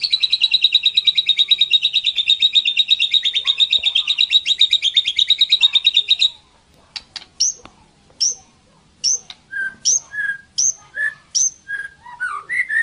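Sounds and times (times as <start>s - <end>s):
white-rumped shama singing trills and whistled phrases: 0.0s - 6.4s, 7.4s - 7.6s, 8.2s - 12.8s.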